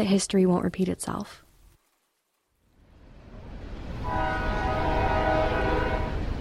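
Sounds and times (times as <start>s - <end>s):
speech: 0.0s - 1.4s
train rumbling past: 2.9s - 6.3s
train horn blast: 4.0s - 6.3s.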